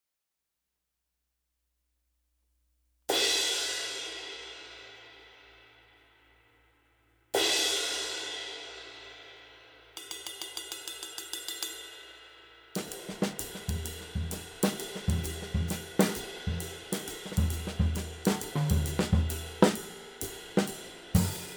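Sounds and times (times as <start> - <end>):
20 Paiste Trad cymbal: 3.1 - 6.6, 7.4 - 21.5.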